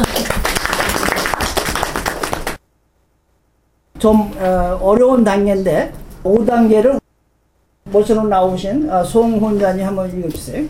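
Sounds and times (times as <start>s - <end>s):
audience applause: 0.0s - 2.6s
speech: 4.0s - 7.0s, 7.9s - 10.6s.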